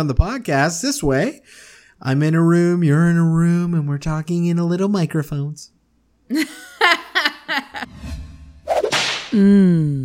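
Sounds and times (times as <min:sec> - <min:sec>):
speech: 0:00.0 - 0:07.0, 0:09.3 - 0:10.0
laughter: 0:06.3 - 0:07.9
loud sharp whip crack: 0:08.7 - 0:09.4.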